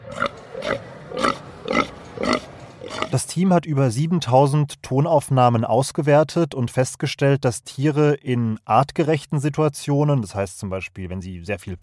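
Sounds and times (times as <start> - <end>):
pig grunting contentedly: 0.0 - 3.2
speech: 3.1 - 11.8.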